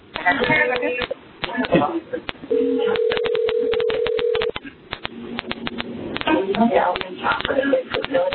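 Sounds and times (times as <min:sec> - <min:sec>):
voices: 0:00.0 - 0:03.4, 0:04.4 - 0:08.3
electronic telephone tone over a phone line: 0:02.5 - 0:04.6.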